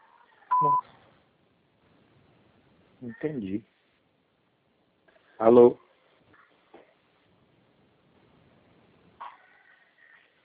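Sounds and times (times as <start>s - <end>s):
faint noise: 0.0s - 10.4s
voicemail beep: 0.5s - 0.9s
speech: 0.6s - 1.0s, 3.0s - 3.8s, 5.4s - 5.8s.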